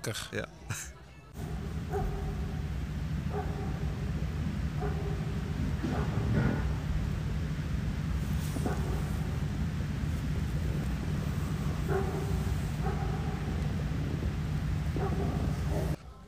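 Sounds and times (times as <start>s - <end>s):
speech: 0.0s - 2.2s
constant low droning hum: 0.0s - 16.2s
dog barking at a campsite at night: 1.4s - 7.2s, 8.2s - 16.0s.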